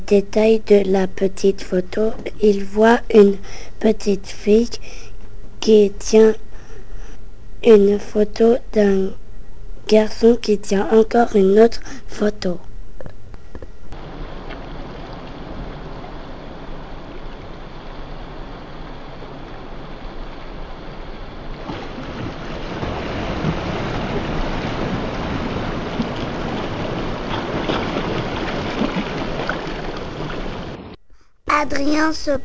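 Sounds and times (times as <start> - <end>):
speech: 0.1 - 6.4, 7.6 - 9.2, 9.9 - 12.7, 31.6 - 32.4
ocean wave rushing in: 14.0 - 31.0.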